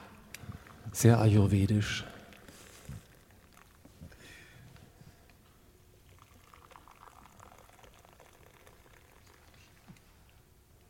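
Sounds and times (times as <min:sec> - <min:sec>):
speech: 0:01.0 - 0:02.1
warm liquid pouring into glasses: 0:01.8 - 0:04.7, 0:05.8 - 0:10.0.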